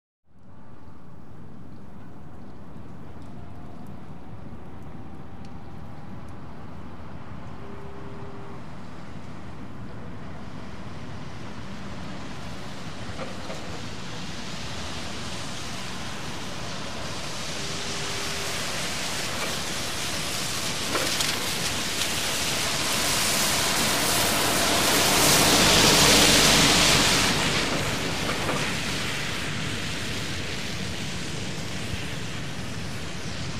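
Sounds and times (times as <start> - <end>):
car passing slowly on wet road in wet traffic: 8.5 - 33.5.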